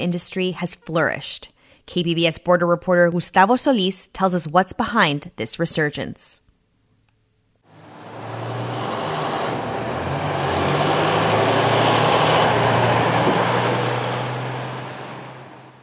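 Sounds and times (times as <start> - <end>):
speech: 0.0 - 6.4
heavy cargo truck traffic roaring at a border crossing: 7.7 - 15.8.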